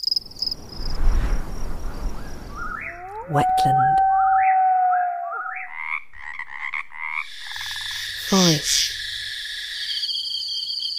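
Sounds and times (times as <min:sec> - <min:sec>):
crickets chirping on open prairie: 0:00.0 - 0:03.8, 0:05.3 - 0:10.9
wind rushing over open prairie: 0:00.2 - 0:03.1
rising bird-like call: 0:02.1 - 0:06.0
speech: 0:03.3 - 0:04.1, 0:08.3 - 0:08.9.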